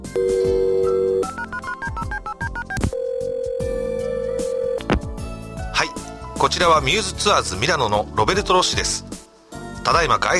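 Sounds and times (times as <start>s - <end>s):
telephone dial tone: 0.2s - 4.9s
speech: 6.4s - 9.1s, 9.9s - 10.3s.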